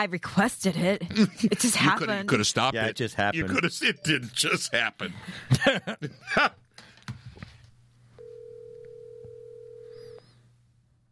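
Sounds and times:
speech: 0.0 - 6.6
laughter: 3.4 - 6.6
cell phone ringing tone as a call goes through: 8.2 - 10.4.

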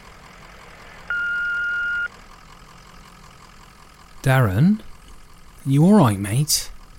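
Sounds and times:
answering machine beep: 1.1 - 2.1
speech: 4.2 - 4.9, 5.6 - 6.7.

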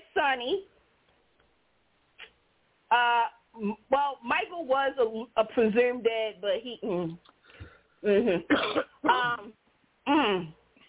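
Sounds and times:
speech: 0.2 - 0.8, 2.9 - 7.3, 8.0 - 10.6
person clearing throat: 8.1 - 9.5.

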